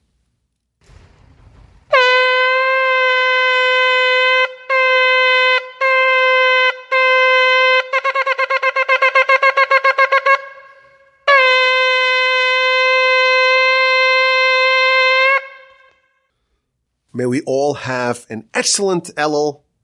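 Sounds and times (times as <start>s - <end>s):
shofar ram's horn blasts recorded on a phone: 1.9s - 16.3s
speech: 17.2s - 19.6s.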